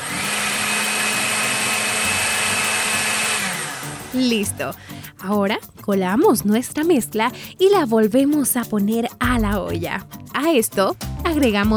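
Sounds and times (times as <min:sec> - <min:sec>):
blender liquefying a fruit mixture with seeds: 0:00.0 - 0:04.2
speech: 0:04.1 - 0:11.7.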